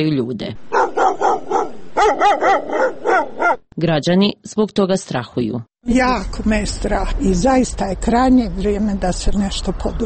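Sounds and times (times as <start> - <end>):
speech: 0.0 - 0.8, 3.8 - 10.0
stray dogs barking on city streets: 0.7 - 3.6.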